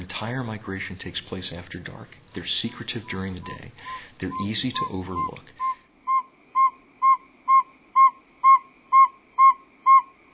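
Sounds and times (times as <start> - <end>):
speech: 0.0 - 5.6
male northern saw-whet owl advertisement call: 4.3 - 10.2.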